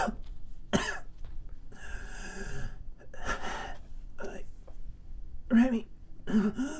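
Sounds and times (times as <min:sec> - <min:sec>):
person coughing harshly: 0:00.0 - 0:01.1, 0:06.3 - 0:06.7
strained wheezy gasp: 0:01.7 - 0:03.8, 0:06.3 - 0:06.7
speech: 0:05.5 - 0:06.7.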